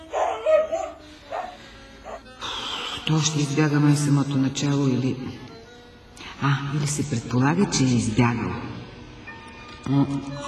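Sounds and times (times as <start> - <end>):
medium-sized stray dog barking: 0.0 - 2.2
speech: 3.1 - 5.5, 6.4 - 8.8, 9.8 - 10.4.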